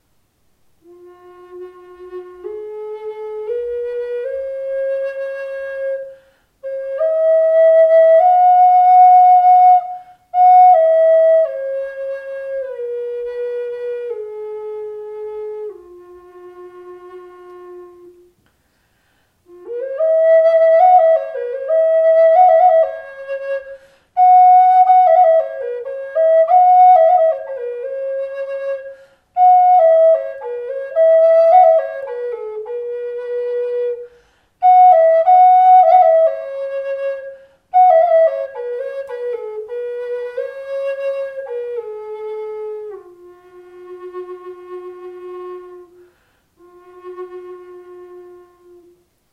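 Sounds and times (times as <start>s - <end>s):
bamboo instrument F sharp tone tuned to 432 Hz: 0.8s - 18.5s, 19.4s - 49.3s.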